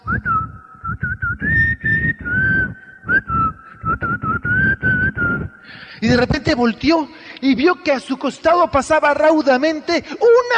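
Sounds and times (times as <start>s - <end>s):
person whistling a melody: 0.0s - 5.8s
speech: 6.0s - 10.5s.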